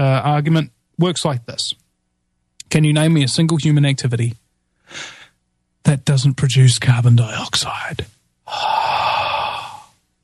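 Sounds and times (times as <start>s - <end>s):
speech: 0.0s - 1.8s, 2.7s - 5.2s, 5.8s - 8.9s
long exhaled breath: 4.8s - 5.4s, 8.5s - 10.0s.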